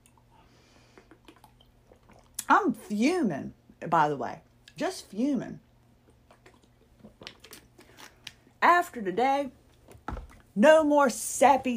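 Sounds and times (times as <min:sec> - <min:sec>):
person gulping water: 0:00.0 - 0:02.5, 0:06.0 - 0:07.8
person sipping bottled water: 0:00.0 - 0:02.5, 0:06.0 - 0:08.4
faint hum: 0:00.0 - 0:11.7
speech: 0:02.5 - 0:05.7, 0:08.7 - 0:09.6, 0:10.6 - 0:11.7.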